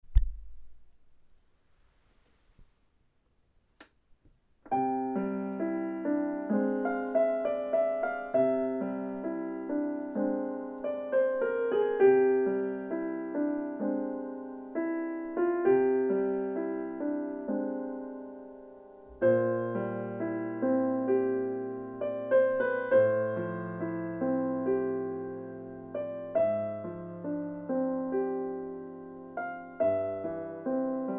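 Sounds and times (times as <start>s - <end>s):
piano piece: 4.6s - 31.1s.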